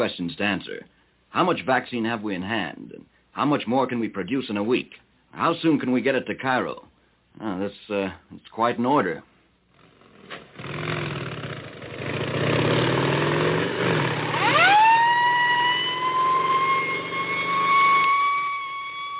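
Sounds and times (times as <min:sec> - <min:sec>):
speech: 0:00.0 - 0:09.3
police escort motorcycle engines rumbling: 0:09.8 - 0:19.1
police motorcycle escort siren wailing: 0:13.7 - 0:19.1.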